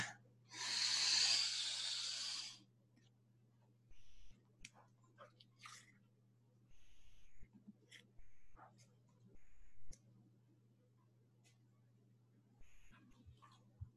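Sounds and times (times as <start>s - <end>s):
deep breath drawn in through the nose: 0.0s - 2.6s
low steady hum: 2.6s - 13.9s.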